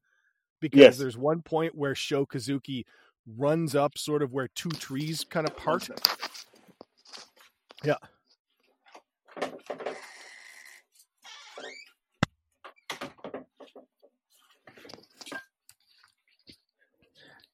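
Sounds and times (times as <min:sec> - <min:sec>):
speech: 0:00.6 - 0:06.4, 0:07.8 - 0:08.1
door creaking: 0:09.4 - 0:12.0.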